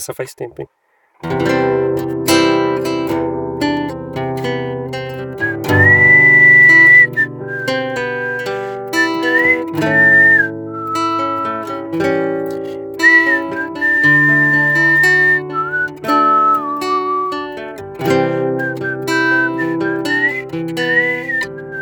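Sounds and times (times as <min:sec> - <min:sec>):
speech: 0:00.0 - 0:02.2
strummed guitar: 0:01.2 - 0:21.7
person whistling a melody: 0:05.1 - 0:21.7.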